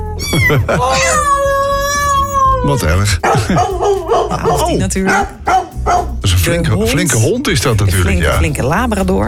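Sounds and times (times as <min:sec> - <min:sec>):
cat meowing: 0:00.0 - 0:03.0
laughter: 0:00.2 - 0:01.3, 0:03.2 - 0:04.8
speech: 0:00.2 - 0:01.3, 0:02.6 - 0:05.6, 0:06.3 - 0:09.2.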